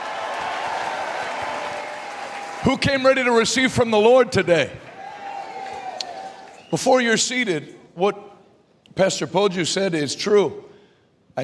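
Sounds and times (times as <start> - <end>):
large audience applause in Lagos: 0.0 - 3.4, 4.8 - 6.7
speech: 2.6 - 4.9, 6.7 - 8.3, 9.0 - 10.7.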